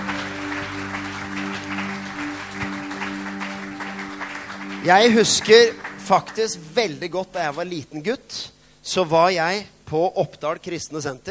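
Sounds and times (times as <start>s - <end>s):
crowd clapping: 0.0s - 7.5s
speech: 4.8s - 11.2s.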